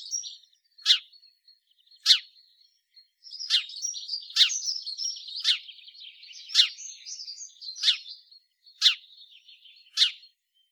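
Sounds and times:
house sparrow giving loud harsh chirps: 0.0 - 1.2, 2.0 - 2.3, 3.3 - 5.8, 6.4 - 10.3.

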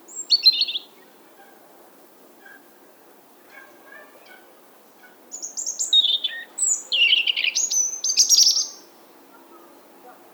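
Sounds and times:
European robin song: 5.3 - 8.9.

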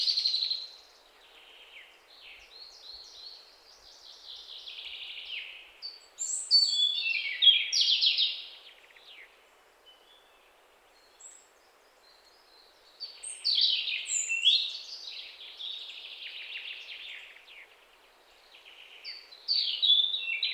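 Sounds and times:
European robin singing, Erithacus rubecula: 0.0 - 9.3, 9.9 - 20.5.

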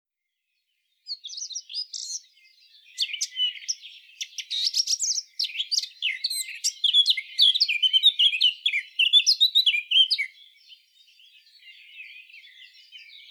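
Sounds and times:
Eurasian blackcap Sylvia atricapilla warbling and twittering: 1.1 - 13.2.

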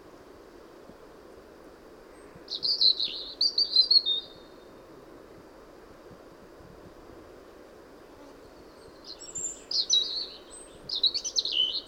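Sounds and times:
steady low background hiss: 0.0 - 11.8
European robin Erithacus rubecula song: 2.2 - 4.7, 8.5 - 11.8
speech: 2.5 - 3.2.

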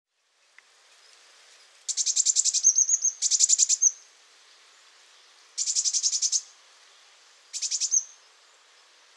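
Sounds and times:
Eurasian blue tit Cyanistes caeruleus churring in harsh buzzy rattles: 1.9 - 4.0, 5.6 - 6.4, 7.5 - 8.1.

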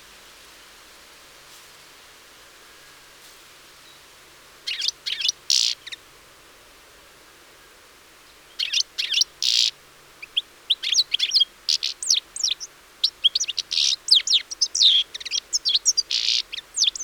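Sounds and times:
European Goldfinch Carduelis carduelis twittering calls: 4.7 - 6.0, 8.5 - 17.0.

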